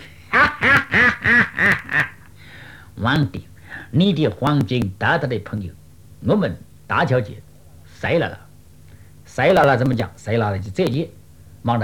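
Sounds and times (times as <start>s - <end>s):
voice imitating a duck quacking: 0.3s - 2.3s
speech: 3.0s - 8.4s, 9.4s - 11.8s.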